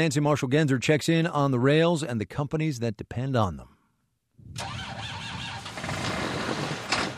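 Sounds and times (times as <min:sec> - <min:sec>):
speech: 0:00.0 - 0:03.7
tractor engine cranking and sputtering, struggling to start: 0:04.6 - 0:07.1.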